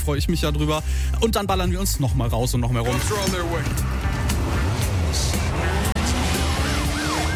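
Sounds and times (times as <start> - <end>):
speech: 0.0 - 4.2
car tires squealing and skidding: 2.9 - 7.3
chaotic traffic noise: 2.9 - 7.3
car roaring along at speed: 3.6 - 7.3.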